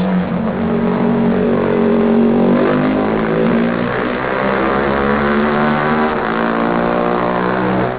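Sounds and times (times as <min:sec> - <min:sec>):
NSU Rennmax racing car engine: 0:00.0 - 0:07.9.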